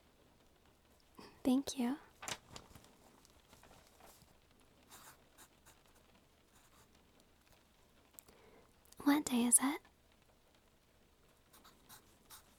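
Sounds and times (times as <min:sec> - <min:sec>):
speech: 0:01.4 - 0:02.1, 0:09.3 - 0:09.8
pencil writing on paper: 0:04.9 - 0:06.0, 0:11.5 - 0:12.5.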